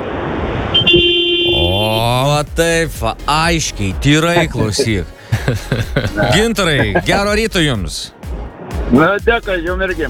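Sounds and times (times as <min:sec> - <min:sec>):
road noise: 0:00.0 - 0:10.0
cargo truck horn honking: 0:00.7 - 0:02.0
speech: 0:02.2 - 0:08.2, 0:08.9 - 0:10.0
laughter: 0:04.4 - 0:07.5.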